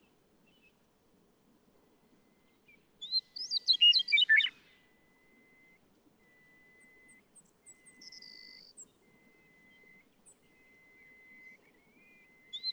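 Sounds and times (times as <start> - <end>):
Western meadowlark singing: 3.0 - 12.7
faint high chirps: 3.1 - 12.7.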